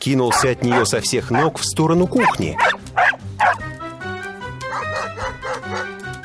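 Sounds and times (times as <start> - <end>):
speech: 0.0 - 2.8
dog barking and yipping excitedly: 0.3 - 3.7, 4.6 - 6.0.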